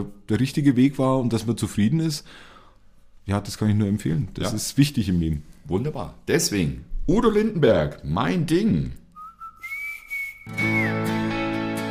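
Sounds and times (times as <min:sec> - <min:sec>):
speech: 0:00.0 - 0:02.5, 0:03.2 - 0:09.0, 0:10.5 - 0:11.0
person whistling a melody: 0:09.2 - 0:11.3
full instrumental backing track: 0:10.5 - 0:11.8.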